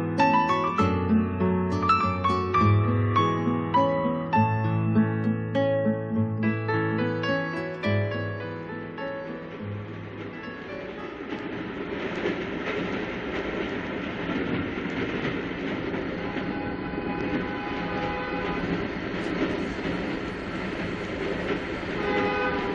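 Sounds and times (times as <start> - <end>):
moving train rumble and clatter: 0.0 - 22.7
old locomotive whistle blasts: 22.0 - 22.7.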